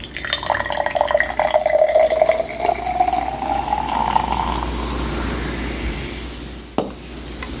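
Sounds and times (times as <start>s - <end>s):
ginger ale poured over a raspberry jam and almond extract drink: 0.0s - 5.4s
quiet bubbling of ginger ale: 0.0s - 6.8s.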